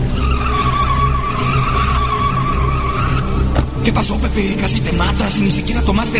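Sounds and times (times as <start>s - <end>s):
car tire screech as the driver loses control: 0.0s - 3.9s
low rumbling car engine: 0.0s - 6.1s
speech: 3.9s - 6.1s.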